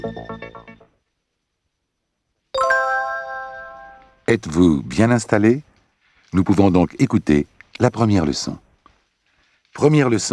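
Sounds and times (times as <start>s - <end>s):
speech: 0.0s - 0.5s, 4.3s - 5.7s, 6.3s - 8.6s, 9.8s - 10.3s
bright chime-like cue tone on an instructional cassette: 2.6s - 4.2s
quick quieter musical notes: 2.6s - 4.2s.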